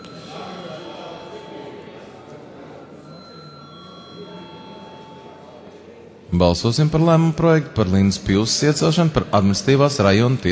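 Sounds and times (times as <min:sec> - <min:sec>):
electric bell ringing in a parliament chamber before a secret-ballot vote: 0:00.0 - 0:05.8
low murmur of voices in a parliament chamber: 0:00.0 - 0:10.4
speech: 0:06.3 - 0:10.4.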